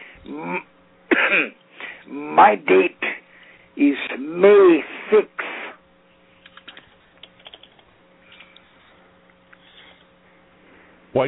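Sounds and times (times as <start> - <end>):
throat clearing: 0.2 - 1.6
person coughing harshly: 0.3 - 3.2
speech: 0.4 - 0.7, 1.3 - 3.1, 3.8 - 5.4.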